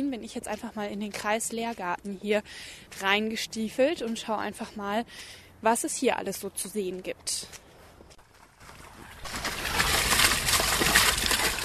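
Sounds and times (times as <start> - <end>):
speech: 0.1 - 7.6
small fountain splashing into a small pond in a district teaching garden: 9.2 - 11.6.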